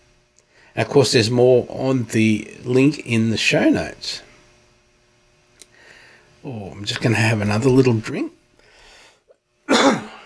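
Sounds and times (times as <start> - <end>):
speech: 0.8 - 4.3, 6.4 - 8.4
cough: 9.7 - 10.2.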